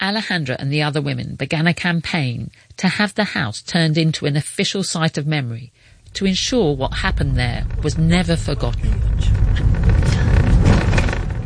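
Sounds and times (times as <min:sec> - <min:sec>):
speech: 0:00.0 - 0:09.8
car driving along a quiet residential street: 0:05.9 - 0:11.4.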